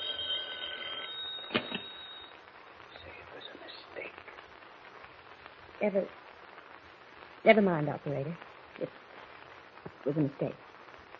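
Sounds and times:
faint telephone bell ringing in a thin high trill: 0:00.0 - 0:02.3
speech: 0:05.8 - 0:06.2, 0:07.4 - 0:09.0, 0:10.0 - 0:10.6.

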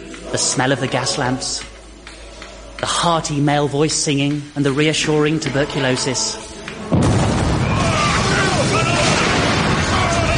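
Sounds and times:
speech: 0:00.3 - 0:01.7, 0:02.8 - 0:07.0
heavy continuous rumbling of a boulder crashing down: 0:06.9 - 0:10.3
sudden explosion: 0:06.9 - 0:10.3.

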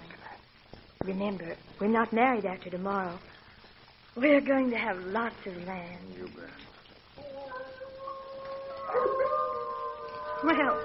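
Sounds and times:
speech: 0:01.0 - 0:03.3, 0:04.2 - 0:07.7, 0:10.4 - 0:10.8
several coyotes howling: 0:07.2 - 0:10.8.

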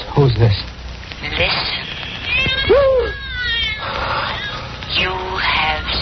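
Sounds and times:
speech: 0:00.3 - 0:00.7
stray cat meowing at night: 0:02.1 - 0:05.8.

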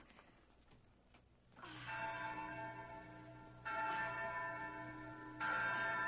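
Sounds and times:
large hacienda bell rung to summon the men: 0:01.6 - 0:06.0.

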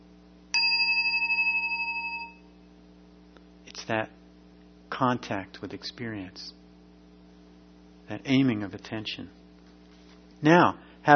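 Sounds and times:
single bell struck with a striker: 0:00.6 - 0:02.5
speech: 0:03.9 - 0:04.2, 0:05.0 - 0:06.6, 0:08.1 - 0:09.4, 0:10.4 - 0:11.1.

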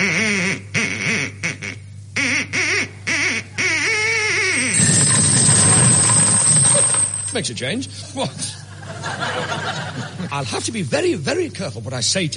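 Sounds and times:
Aylesbury duck squawking and quacking: 0:00.0 - 0:04.8
laughter: 0:04.8 - 0:07.0, 0:08.1 - 0:10.4
speech: 0:07.4 - 0:08.6, 0:09.2 - 0:12.3.

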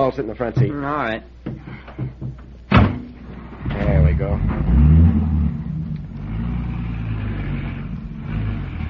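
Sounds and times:
speech: 0:00.1 - 0:01.9, 0:03.8 - 0:04.9
station wagon engine driving off: 0:03.2 - 0:08.8.

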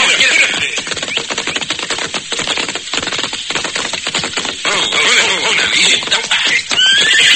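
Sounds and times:
galloping horse hooves clattering: 0:00.0 - 0:07.3
horses whinnying and snorting: 0:00.0 - 0:07.3.

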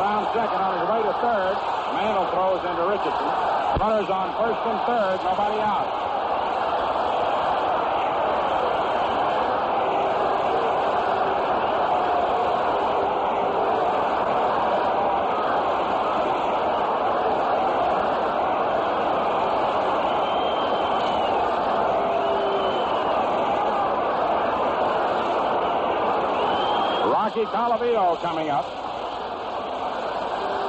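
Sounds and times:
large baseball stadium crowd cheering after a base hit: 0:00.0 - 0:30.6
speech: 0:00.4 - 0:06.1, 0:27.7 - 0:28.8
faint whistles from baseball stadium crowd: 0:20.0 - 0:21.4, 0:22.0 - 0:23.4, 0:26.3 - 0:27.1.

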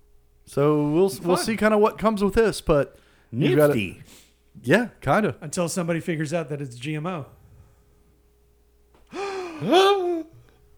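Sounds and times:
speech: 0:00.5 - 0:07.4, 0:09.6 - 0:10.1
person gasping dramatically: 0:09.1 - 0:10.4.

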